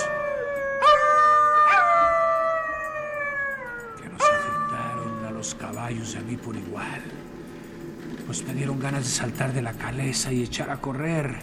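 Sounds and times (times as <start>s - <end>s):
several wolves howling together: 0.0s - 7.1s
speech: 5.9s - 7.4s, 8.3s - 11.4s.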